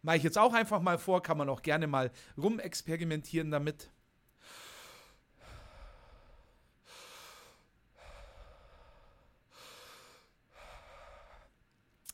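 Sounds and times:
speech: 0.0s - 4.6s
continuous wave-like breathing in and out: 4.3s - 11.7s.

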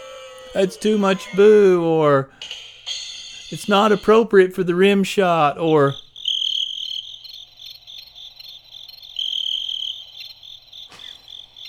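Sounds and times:
speech: 0.5s - 2.6s, 3.5s - 6.0s
crickets chirping in pulsing trills: 3.6s - 11.6s.

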